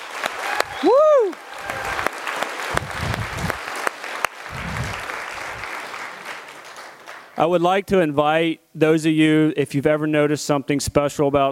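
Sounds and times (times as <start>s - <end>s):
large audience applause for graduates: 0.0s - 7.4s
whooping cheer: 0.2s - 3.7s
speech: 7.4s - 11.5s.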